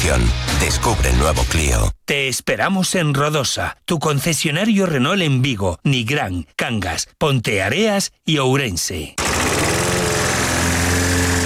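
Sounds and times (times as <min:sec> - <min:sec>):
speech: 0:00.1 - 0:09.6
lawn mower engine droning: 0:09.2 - 0:11.4.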